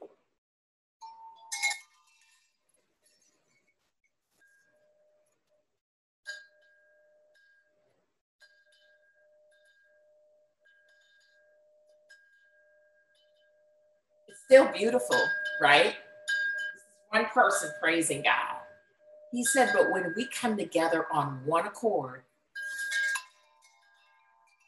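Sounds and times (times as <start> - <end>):
soft metallic chimes: 1.0 - 3.7, 6.3 - 20.3, 22.5 - 24.6
speech: 14.5 - 16.0, 17.3 - 18.6, 19.3 - 22.3.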